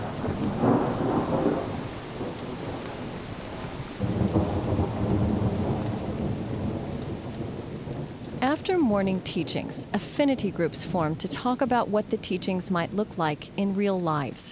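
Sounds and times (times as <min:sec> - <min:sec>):
deep rumbles of thunder in eastern Wisconsin: 0:00.0 - 0:11.2
steady heavy rain on a late summer day in eastern Wisconsin: 0:00.0 - 0:14.5
speech: 0:08.6 - 0:14.5.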